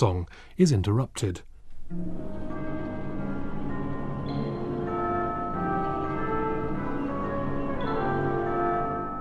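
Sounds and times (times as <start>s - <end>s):
speech: 0.0s - 2.6s
distant bells ringing: 1.9s - 9.1s.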